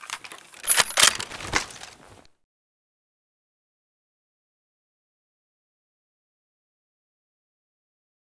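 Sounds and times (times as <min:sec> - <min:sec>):
WA2000 rifle misfire: 0:00.6 - 0:01.5.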